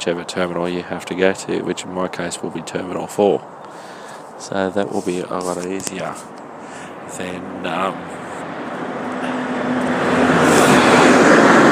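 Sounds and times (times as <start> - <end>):
speech: 0.0 - 6.4, 7.1 - 8.2
bus driving past on a London road: 3.7 - 11.7.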